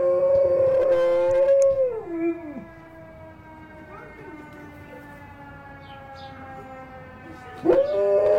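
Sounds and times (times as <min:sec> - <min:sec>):
golden retriever howling imitating a fire truck siren: 0:00.0 - 0:02.9, 0:07.6 - 0:08.3.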